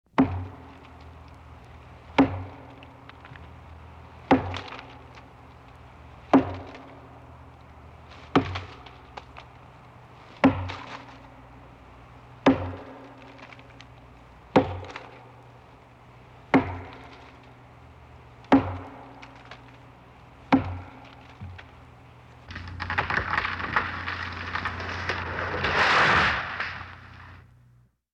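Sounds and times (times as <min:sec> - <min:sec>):
tree being felled in the countryside: 0:00.2 - 0:27.6.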